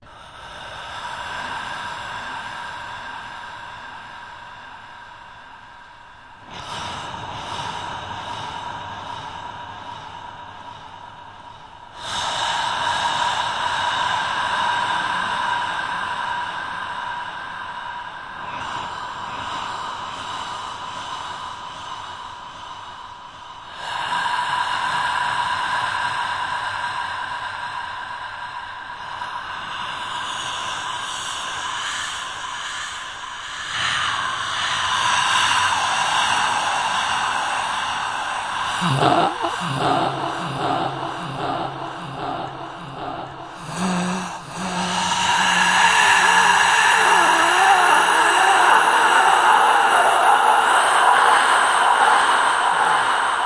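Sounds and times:
breathing in space: 0:00.0 - 0:53.4
atmospheric ambience: 0:37.6 - 0:53.4.

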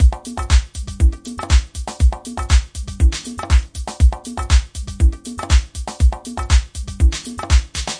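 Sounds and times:
conga drum at 120 bpm: 0:00.0 - 0:07.9.

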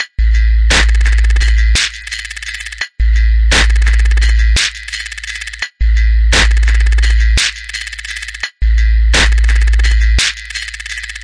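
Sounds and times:
drum loops and breaks: 0:00.0 - 0:11.2.

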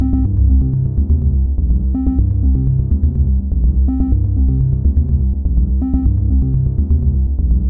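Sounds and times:
acid bass synth loop: 0:00.0 - 0:07.6.

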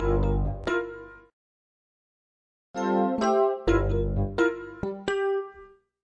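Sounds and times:
new age piano funk loop: 0:00.0 - 0:01.2, 0:03.5 - 0:05.6.

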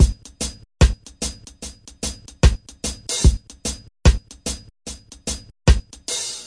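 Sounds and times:
reggae kick drum: 0:00.0 - 0:00.2, 0:00.8 - 0:01.1, 0:02.1 - 0:04.6, 0:05.7 - 0:05.9
reggae snare drum: 0:00.0 - 0:01.4, 0:02.0 - 0:06.4.

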